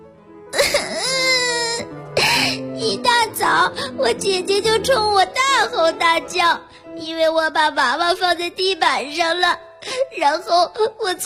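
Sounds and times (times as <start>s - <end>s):
child bursting into tears and wailing: 0.6s - 5.9s, 9.2s - 11.2s
speech: 3.7s - 11.2s.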